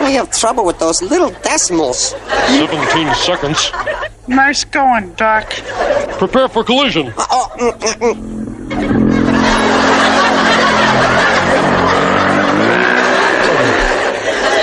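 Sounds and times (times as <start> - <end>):
speech: 0.1 - 8.9
laughter: 2.0 - 4.3, 5.4 - 14.6
vocal bursts: 7.4 - 14.0
motorcycle engine sound effect revving: 8.0 - 14.0.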